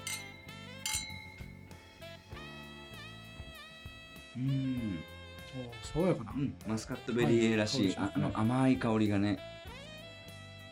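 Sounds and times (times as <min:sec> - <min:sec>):
wine glasses clinking in a toast with Muscat Bailey A wine at Ushiku Chateau in Japan: 0:00.0 - 0:02.7
light music: 0:00.0 - 0:10.7
speech: 0:04.4 - 0:09.5.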